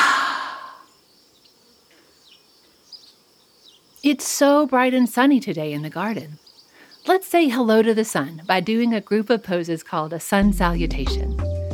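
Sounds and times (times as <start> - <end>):
long deep breath out during a yoga breathing exercise: 0.0 - 0.9
speech: 4.0 - 6.4, 7.1 - 11.4.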